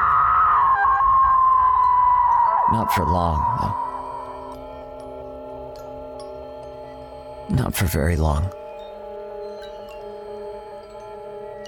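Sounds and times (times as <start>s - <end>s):
woman screaming outside: 0.0s - 2.7s
speech: 2.7s - 3.9s, 7.5s - 8.6s.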